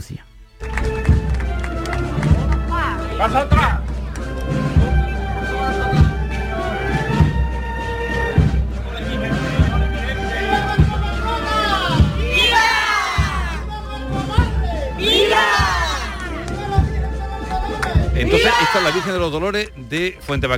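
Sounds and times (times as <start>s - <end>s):
speech: 0.0s - 0.8s, 3.2s - 3.8s, 18.2s - 20.5s
dense outdoor crowd at a religious procession murmuring and shuffling: 0.6s - 19.2s
crowd shouting cheers of Viva at a religious procession: 11.4s - 13.6s, 15.0s - 16.4s, 18.2s - 19.2s.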